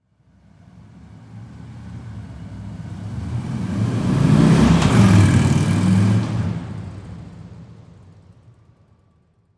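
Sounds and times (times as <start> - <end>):
motorcycle driving by: 2.9 - 7.0.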